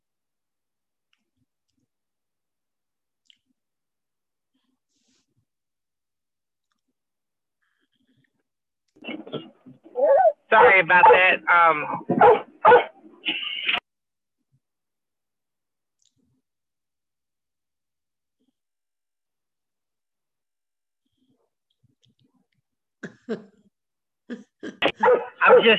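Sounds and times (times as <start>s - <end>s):
dogs barking at each other: 10.0s - 11.4s, 12.0s - 13.0s, 25.0s - 25.7s
speech: 10.5s - 13.4s.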